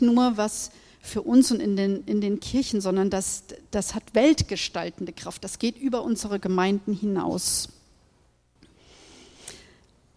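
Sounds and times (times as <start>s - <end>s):
speech: 0.0s - 7.8s
slow deep breath through the nose as part of the Hongi: 8.8s - 9.8s.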